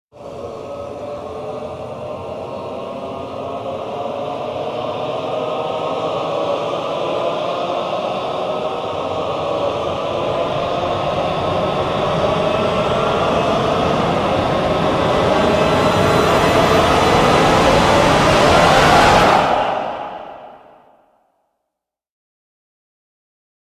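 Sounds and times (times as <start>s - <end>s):
choir singing: 0.2s - 21.0s.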